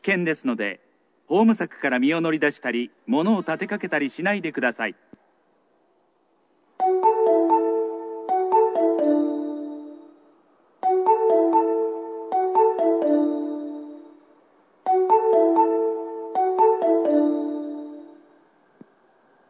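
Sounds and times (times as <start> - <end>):
speech: 0.0 - 5.1
electronic station chime announcing a train's arrival at the platform: 6.8 - 18.4.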